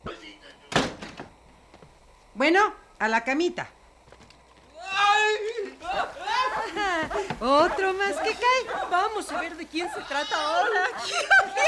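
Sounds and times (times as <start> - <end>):
door shutting: 0.7 - 1.4
speech: 2.4 - 3.8, 7.0 - 11.6
laughter: 5.8 - 11.6.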